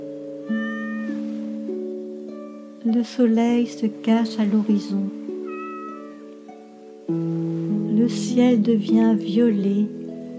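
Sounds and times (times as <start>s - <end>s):
cat meowing softly: 0.4s - 1.3s, 5.4s - 6.4s
speech: 2.8s - 5.2s, 8.1s - 10.0s.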